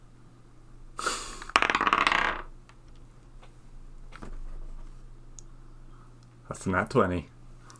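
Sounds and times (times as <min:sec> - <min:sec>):
d20 die rattling across a hard tabletop: 0:01.5 - 0:02.5
speech: 0:06.5 - 0:07.4.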